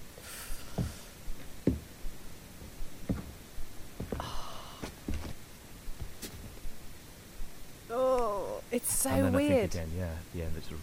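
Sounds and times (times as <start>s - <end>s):
steady hiss of noise: 0.0s - 10.8s
faint footsteps along a corridor: 0.7s - 1.9s, 2.6s - 3.4s, 4.0s - 5.4s
speech: 8.9s - 10.8s.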